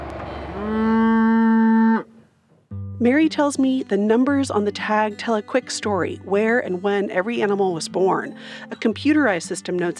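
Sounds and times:
mother cow mooing in a field: 0:00.5 - 0:02.2
speech: 0:00.6 - 0:00.8, 0:03.0 - 0:09.9.

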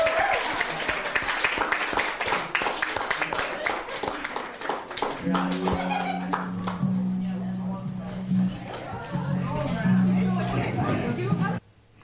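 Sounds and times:
audience applause at a poetry slam: 0:00.0 - 0:07.0
laughter: 0:03.2 - 0:04.6, 0:05.2 - 0:06.9, 0:08.1 - 0:11.6.

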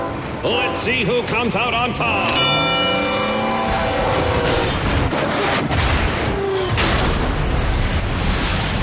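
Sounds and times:
freight train horn at a crossing: 0:00.0 - 0:01.0, 0:02.5 - 0:04.8
speech: 0:00.4 - 0:02.8
crash and booming roar of grinding metal and debris: 0:02.4 - 0:08.8.

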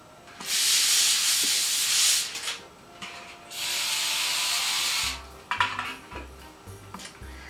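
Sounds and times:
cooking spray hissing onto pans for baking and broiling fish: 0:00.4 - 0:02.6, 0:03.5 - 0:05.3.

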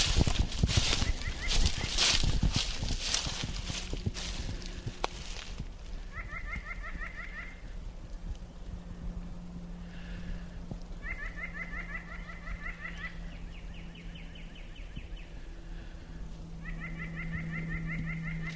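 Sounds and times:
Canada geese honking: 0:00.0 - 0:07.8, 0:11.0 - 0:13.5, 0:15.3 - 0:18.5
outdoor noise: 0:00.0 - 0:18.5
steady low hum: 0:00.0 - 0:18.5.

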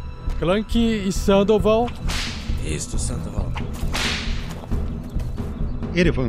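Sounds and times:
speech: 0:00.4 - 0:04.3, 0:05.9 - 0:06.2
whip crack: 0:01.9 - 0:02.7, 0:03.5 - 0:04.7.

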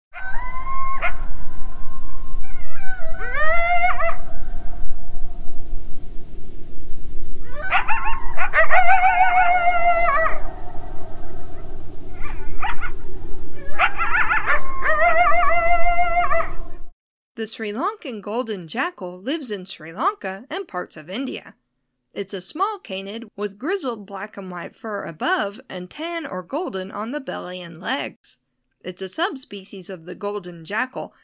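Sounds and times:
coyotes yipping and howling: 0:00.1 - 0:04.9, 0:07.4 - 0:16.8
steady low hiss: 0:17.4 - 0:31.1
speech: 0:17.4 - 0:31.2.

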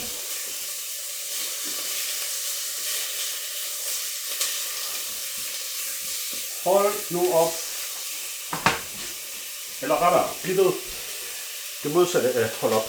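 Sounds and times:
pork belly sizzling as it fries in a pot: 0:00.0 - 0:12.8
speech: 0:06.6 - 0:07.6, 0:09.8 - 0:11.0, 0:11.8 - 0:12.8
fat popping: 0:08.5 - 0:09.1.

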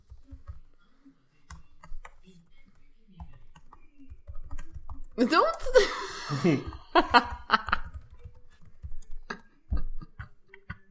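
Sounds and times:
clacking of computer keyboard keys: 0:01.4 - 0:05.6, 0:06.6 - 0:09.5
speech: 0:05.2 - 0:07.4
laughter: 0:05.6 - 0:08.0, 0:09.2 - 0:10.8.

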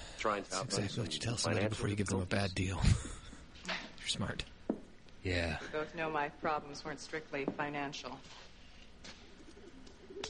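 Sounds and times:
speech: 0:00.2 - 0:04.6, 0:05.2 - 0:08.5
pigeons cooing in a loft: 0:09.4 - 0:10.2.

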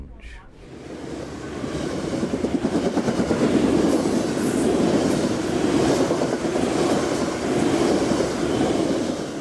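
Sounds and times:
passenger train approaching Eugene Oregon rumbling along the rails heard from onboard: 0:00.6 - 0:09.4.

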